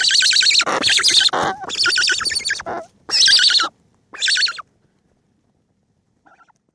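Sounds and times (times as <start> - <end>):
Cory's shearwater chicks raspy pulsed wheezing calls: 0.0 - 4.6.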